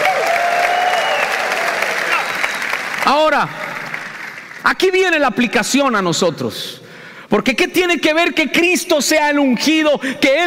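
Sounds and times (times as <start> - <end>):
scattered voices and cheers: 0.0 - 3.4
large crowd applauding loudly: 0.0 - 4.7
speech: 3.1 - 3.6, 4.6 - 10.4.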